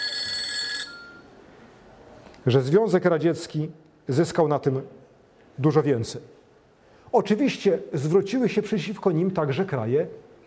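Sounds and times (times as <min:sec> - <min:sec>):
mobile phone ringing with an electronic trill: 0:00.0 - 0:01.3
speech: 0:02.4 - 0:05.0, 0:05.6 - 0:06.4, 0:07.1 - 0:10.2.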